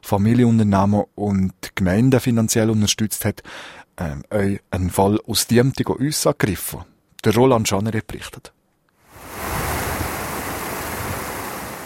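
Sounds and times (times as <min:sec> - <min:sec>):
speech: 0:00.0 - 0:08.6
rushing mountain stream water: 0:09.1 - 0:11.8.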